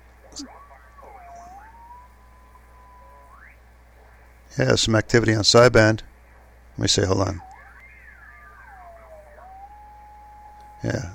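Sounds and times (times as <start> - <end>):
shortwave radio static hiss: 0.0 - 11.1
heterodyne whistle on a shortwave radio with a ceramic resonator on the 17-meter band: 0.3 - 3.5, 7.4 - 10.8
speech: 0.4 - 0.6, 4.5 - 6.1, 6.8 - 7.5.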